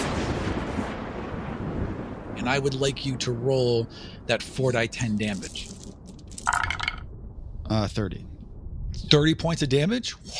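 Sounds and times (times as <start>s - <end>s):
thunderclap explosion: 0.0s - 4.0s
speech: 2.4s - 5.8s, 7.7s - 8.3s, 9.0s - 10.3s.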